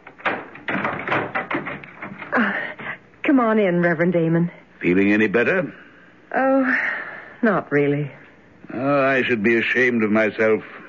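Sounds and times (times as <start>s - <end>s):
locked door being unlocked and opened: 0.0s - 2.4s
metallic clatters: 0.0s - 2.6s
speech: 3.4s - 10.8s.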